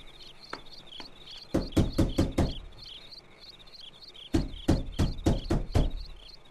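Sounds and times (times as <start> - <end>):
knocking on a door at night: 1.4 - 2.8, 4.3 - 6.1.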